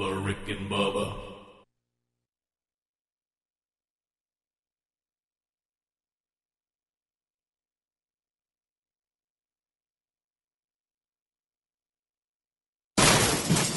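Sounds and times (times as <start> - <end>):
speech: 0.0 - 1.3
old dehumidifiers thrown out, crashing and rattling: 13.0 - 13.7.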